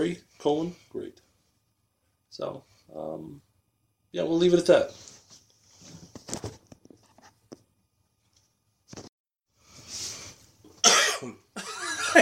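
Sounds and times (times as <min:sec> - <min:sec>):
speech: 0:00.0 - 0:01.0, 0:02.3 - 0:03.5, 0:04.1 - 0:05.1
person coughing harshly: 0:10.8 - 0:12.2.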